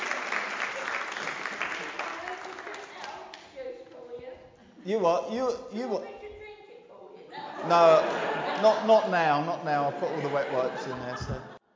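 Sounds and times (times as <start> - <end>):
crowd applauding: 0.0 - 3.4
speech: 4.8 - 6.2, 7.6 - 11.6
laughter: 7.3 - 11.6.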